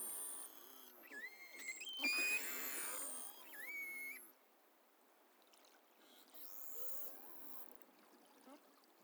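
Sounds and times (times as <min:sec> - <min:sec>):
beluga whale whistles off Northern Baffin Island: 0:01.2 - 0:04.2.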